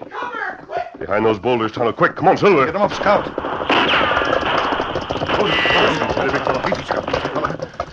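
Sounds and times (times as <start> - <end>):
speech: 1.1 - 4.0, 5.4 - 7.3
gunfire in an ambush from a gully on a western trail: 2.8 - 7.8.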